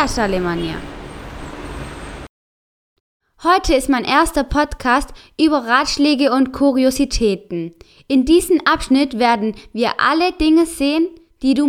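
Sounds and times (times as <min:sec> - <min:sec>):
speech: 0:00.0 - 0:01.0, 0:03.4 - 0:11.6
street traffic noise of passing vehicles: 0:00.0 - 0:02.3.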